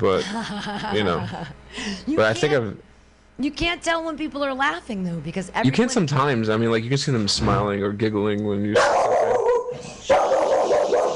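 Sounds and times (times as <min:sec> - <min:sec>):
speech: 0:00.0 - 0:09.1
dog barking: 0:08.8 - 0:11.1.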